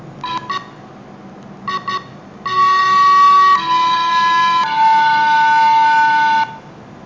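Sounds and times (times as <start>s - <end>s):
flute: 1.7s - 6.7s.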